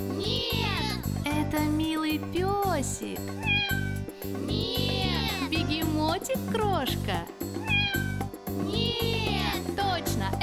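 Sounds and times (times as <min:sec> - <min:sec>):
steady bouncy musical beat: 0:00.0 - 0:10.4
speech: 0:02.1 - 0:07.6
cat meowing: 0:03.3 - 0:05.5, 0:07.6 - 0:09.6.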